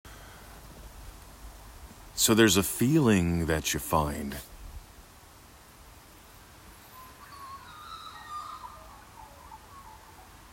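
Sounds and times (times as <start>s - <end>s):
steady outdoor hiss: 0.1s - 10.5s
speech: 2.2s - 4.5s
faint birds singing: 6.3s - 10.5s.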